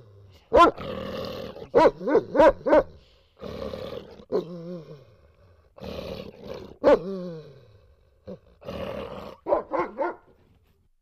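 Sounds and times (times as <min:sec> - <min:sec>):
dog grunting: 0:00.0 - 0:09.6
dog barking: 0:00.5 - 0:00.8, 0:01.7 - 0:03.0, 0:06.8 - 0:07.1, 0:09.4 - 0:10.4.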